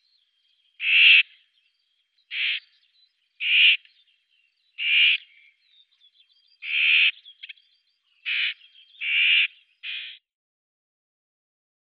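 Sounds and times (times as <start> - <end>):
common whitethroat rasping calls: 0.8 - 1.5, 2.3 - 2.8, 3.4 - 3.9, 4.7 - 5.6, 6.5 - 10.2.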